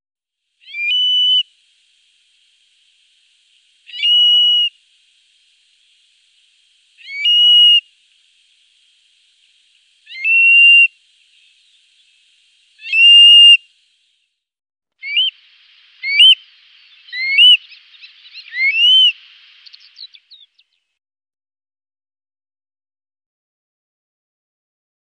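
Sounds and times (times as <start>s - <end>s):
Eurasian stone-curlew whistles: 0.6s - 1.4s, 3.9s - 4.8s, 7.0s - 7.9s, 10.0s - 11.0s, 12.8s - 13.6s, 15.0s - 15.4s, 16.0s - 16.4s, 17.1s - 17.6s, 18.3s - 19.2s.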